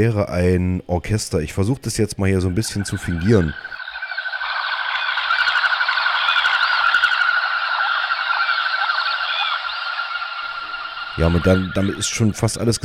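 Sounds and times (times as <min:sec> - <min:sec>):
speech: 0:00.0 - 0:03.8, 0:11.2 - 0:12.8
dense chorus of common goldeneye ducks calling: 0:02.4 - 0:12.4.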